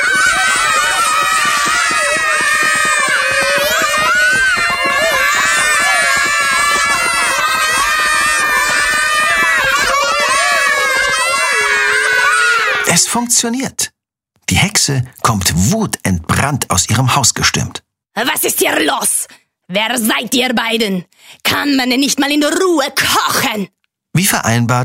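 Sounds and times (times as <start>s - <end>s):
children stomping their feet with thumping footfalls: 0.0s - 11.5s
rowdy group of children shouting and shrieking: 0.0s - 12.9s
speech: 13.1s - 13.9s, 14.5s - 24.8s.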